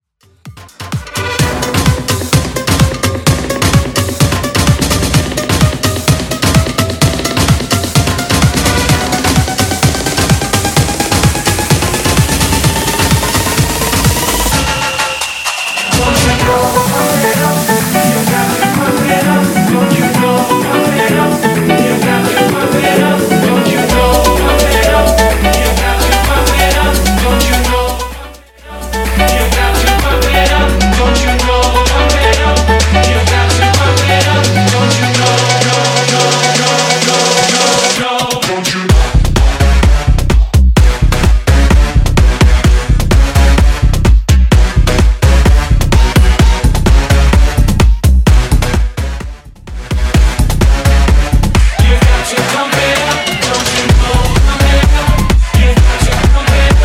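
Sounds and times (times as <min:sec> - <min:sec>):
bass house music at 128 bpm: 0:00.1 - 0:56.8.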